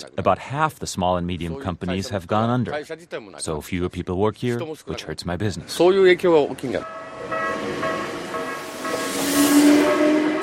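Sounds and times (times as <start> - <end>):
speech: 0.0 - 7.9
commuter train into Tokyo rolling along its rails: 6.7 - 10.4
high metallic whine: 6.7 - 10.4.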